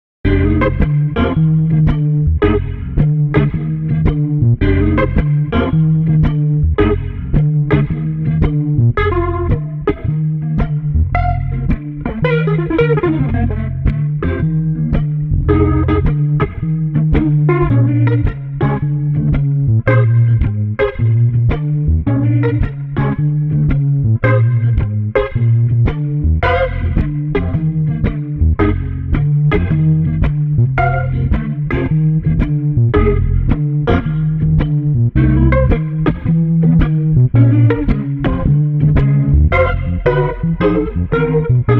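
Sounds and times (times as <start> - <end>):
funky blues street guitar bass: 0.2 - 41.7.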